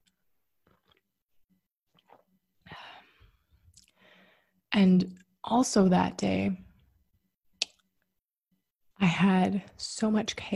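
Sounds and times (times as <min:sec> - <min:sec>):
person sipping hot coffee: 0:00.6 - 0:01.1, 0:01.9 - 0:02.4
breathing: 0:02.7 - 0:04.6
speech: 0:04.8 - 0:06.6, 0:09.1 - 0:10.5.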